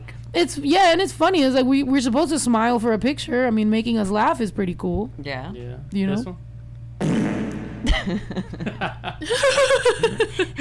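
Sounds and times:
speech: 0:00.3 - 0:06.5, 0:07.9 - 0:10.5
buzzy fart sound effect with church-like reverb: 0:07.0 - 0:07.9
people laughing: 0:07.9 - 0:10.5.

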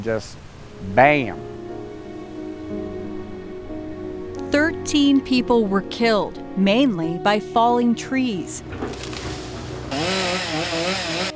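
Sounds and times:
speech: 0:00.0 - 0:01.5, 0:04.5 - 0:09.3
chainsaw engine idling rough and revving: 0:08.9 - 0:11.3.

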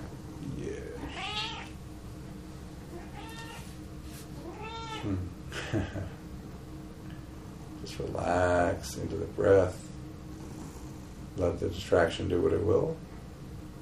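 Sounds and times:
low hum: 0:00.0 - 0:13.8
female domestic cat meowing: 0:01.1 - 0:01.7, 0:03.0 - 0:03.7, 0:04.4 - 0:05.1
speech: 0:05.0 - 0:06.1, 0:08.9 - 0:09.9, 0:11.4 - 0:13.1.

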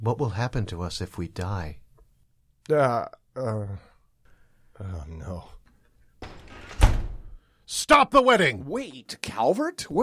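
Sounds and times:
speech: 0:00.0 - 0:01.8, 0:02.7 - 0:03.9, 0:04.8 - 0:05.6, 0:07.7 - 0:10.0
doors flung open to interrupt a wedding: 0:06.2 - 0:07.4.

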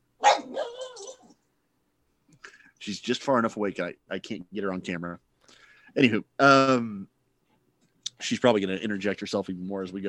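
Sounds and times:
dog barking playfully: 0:00.2 - 0:01.3
speech: 0:02.8 - 0:05.3, 0:06.0 - 0:07.2, 0:08.2 - 0:10.0.

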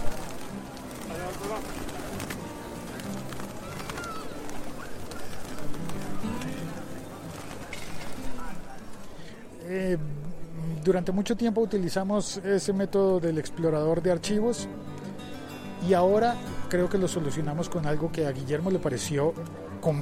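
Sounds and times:
pigeons cooing: 0:00.0 - 0:08.2
faint voices murmuring: 0:00.0 - 0:20.0
speech: 0:01.5 - 0:01.9, 0:10.9 - 0:14.9, 0:15.8 - 0:20.0.

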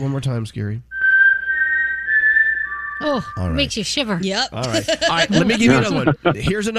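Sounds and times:
speech: 0:00.0 - 0:00.9, 0:03.0 - 0:06.7
person whistling a four-note signal melody: 0:00.9 - 0:03.6
laughter: 0:04.6 - 0:06.7.

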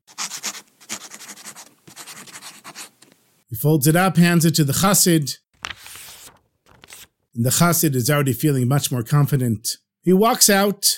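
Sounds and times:
quill pen scratching on paper: 0:00.1 - 0:03.1
speech: 0:03.5 - 0:05.4, 0:07.4 - 0:10.9.

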